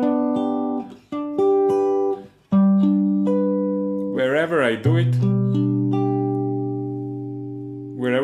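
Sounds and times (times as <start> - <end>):
guitar notes of a G major chord picked and ringing: 0.0 - 8.2
speech: 4.4 - 5.8.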